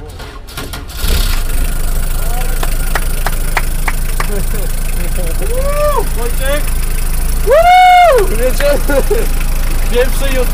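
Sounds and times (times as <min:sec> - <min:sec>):
push-started car engine idling: 0:00.0 - 0:10.5
laughter: 0:02.3 - 0:06.4, 0:07.5 - 0:09.4
speech: 0:04.4 - 0:10.5.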